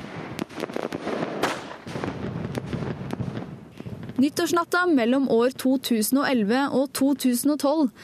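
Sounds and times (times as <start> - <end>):
fireworks crackling and popping: 0.0 - 6.0
speech: 4.2 - 8.0.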